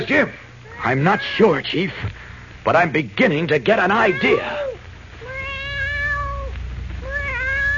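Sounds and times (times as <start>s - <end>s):
speech: 0.0s - 4.7s
low hum: 0.0s - 7.7s
cat mewing plaintively: 0.6s - 1.6s, 4.0s - 7.7s.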